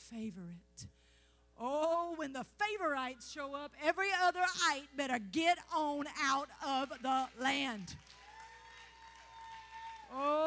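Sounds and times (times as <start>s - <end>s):
speech: 0.1s - 1.0s, 1.6s - 8.2s, 10.1s - 10.4s
audience clapping: 6.7s - 10.4s.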